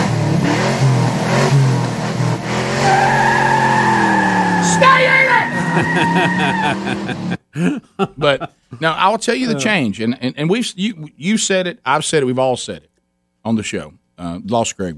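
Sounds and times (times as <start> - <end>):
combustion engine car revving: 0.0 - 7.4
laughter: 5.4 - 8.8
speech: 5.8 - 14.9.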